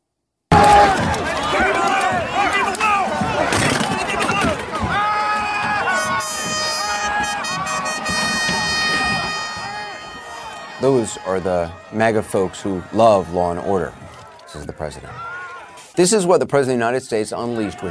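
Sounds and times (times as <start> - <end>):
large agitated mob attacking police shouting and cheering: 0.5 - 15.9
steady horn-like tones blaring: 4.9 - 12.8
speech: 10.8 - 15.3, 16.0 - 17.8.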